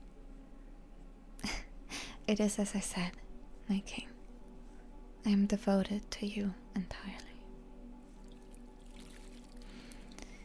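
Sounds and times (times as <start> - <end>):
faint low hum: 0.0 - 10.4
speech: 2.3 - 4.1, 5.2 - 7.3
water pouring into a bath: 8.2 - 10.3.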